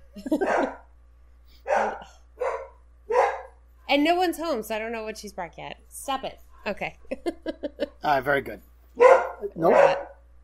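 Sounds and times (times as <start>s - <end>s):
speech: 0.2s - 0.7s, 3.9s - 10.1s
dog barking: 0.4s - 0.9s, 1.6s - 3.6s, 9.0s - 10.2s.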